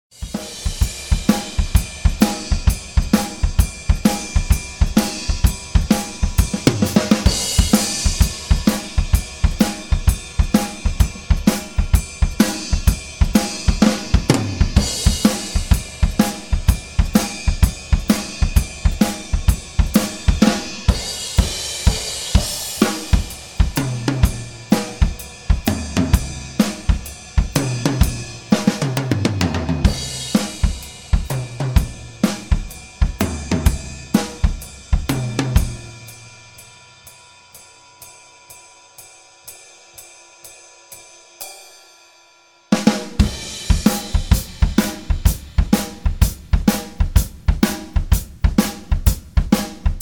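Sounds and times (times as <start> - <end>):
drum solo recorded with ORTF overheads: 0.1 - 37.7, 42.7 - 50.0.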